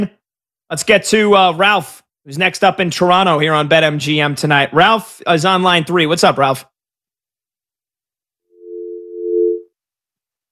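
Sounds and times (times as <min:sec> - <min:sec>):
speech: 0:00.0 - 0:06.7
telephone line tone after caller hung up: 0:08.6 - 0:09.7.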